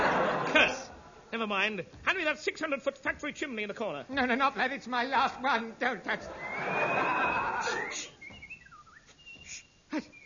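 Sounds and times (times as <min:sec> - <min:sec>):
laughter: 0:00.0 - 0:01.2, 0:06.2 - 0:08.1
speech: 0:00.6 - 0:08.2
person whistling a short wavering tune: 0:06.4 - 0:10.2.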